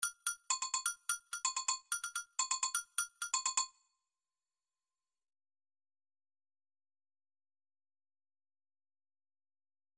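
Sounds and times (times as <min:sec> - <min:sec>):
MIDI agogo bells: 0:00.0 - 0:03.8.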